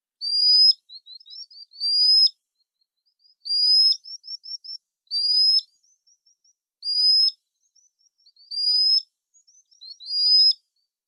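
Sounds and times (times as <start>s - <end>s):
common sandpiper calls: 0.2s - 2.3s, 3.4s - 7.4s, 8.2s - 9.1s, 9.8s - 10.6s.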